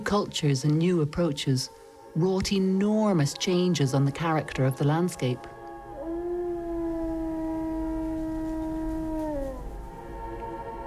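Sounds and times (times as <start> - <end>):
speech: 0.1 - 5.5
lone wolf howling: 5.7 - 9.9.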